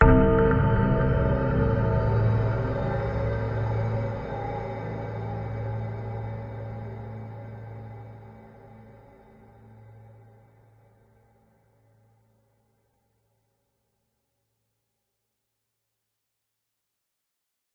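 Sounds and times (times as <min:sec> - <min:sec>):
horror hit: 0:00.0 - 0:07.5
ghostly bell-like chime: 0:00.0 - 0:08.8
dark sinister synth pads: 0:00.0 - 0:10.7.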